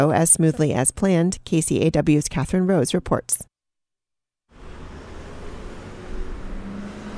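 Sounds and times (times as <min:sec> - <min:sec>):
speech: 0:00.0 - 0:03.5
road traffic roar at the Lake and Lincoln intersection in Alaska: 0:04.5 - 0:07.1.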